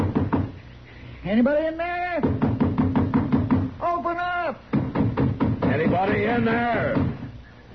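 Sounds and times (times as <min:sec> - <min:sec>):
firm loud knocks on a wooden door: 0:00.0 - 0:00.6, 0:02.2 - 0:03.7, 0:04.7 - 0:07.4
speech: 0:01.2 - 0:02.5, 0:05.8 - 0:07.1.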